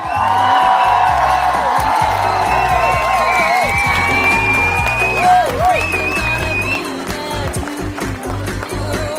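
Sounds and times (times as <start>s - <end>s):
crowd whistles: 0.0s - 1.0s, 2.4s - 7.0s
crowd ovation with sustained applause: 0.0s - 9.1s.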